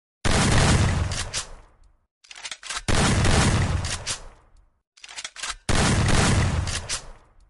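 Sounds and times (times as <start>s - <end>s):
gunshot: 0.2s - 1.6s, 2.9s - 4.3s, 5.7s - 7.3s.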